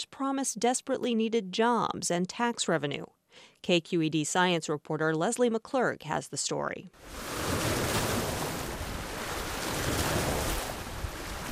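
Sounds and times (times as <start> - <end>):
speech: 0.0 - 7.8
gusting wind: 7.0 - 11.4
surf crashing against shoreline below a windswept bluff in South Vallejo: 7.0 - 11.4.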